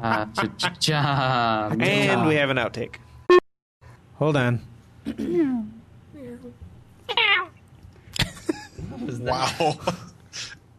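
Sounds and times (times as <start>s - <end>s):
speech: 0.0s - 3.4s, 4.2s - 5.8s, 8.9s - 10.6s
cat meowing: 7.1s - 7.6s.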